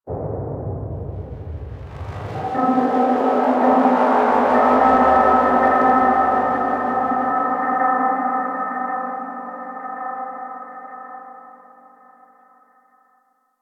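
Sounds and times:
exterior deep abyss hit: 0.1s - 9.3s.

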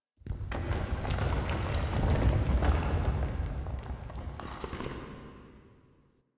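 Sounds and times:
rocks crumbling in a cave: 0.2s - 5.2s.

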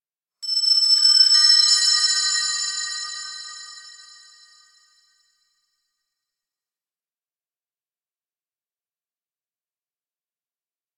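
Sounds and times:
high bell: 0.4s - 5.4s.

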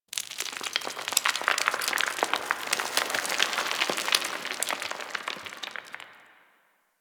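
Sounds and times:
stone crumbling: 0.1s - 6.5s.

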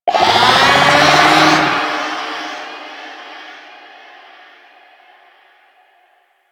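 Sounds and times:
infested golem charging vocal: 0.1s - 4.6s.

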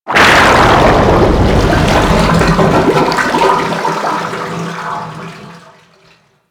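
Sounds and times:
ocean water draining through a metal tube: 0.4s - 6.4s.

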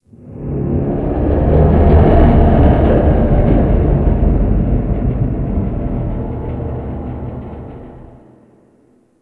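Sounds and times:
ocean ship hull creaking: 1.3s - 8.3s.

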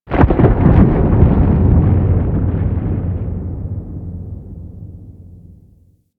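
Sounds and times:
large moon earth crack: 0.1s - 5.5s
ambience: 2.0s - 6.0s.

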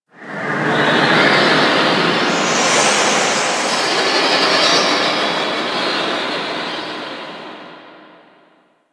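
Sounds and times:
moon space wind ambience: 1.3s - 6.5s.

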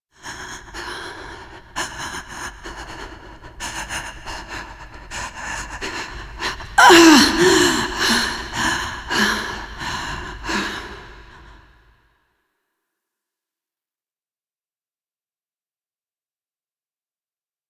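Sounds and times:
woman breathing: 0.2s - 11.9s.

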